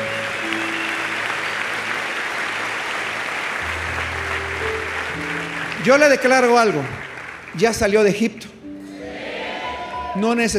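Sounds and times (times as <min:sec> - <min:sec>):
audience applauding in church: 0:00.0 - 0:08.4
speech: 0:05.8 - 0:08.5, 0:10.2 - 0:10.5.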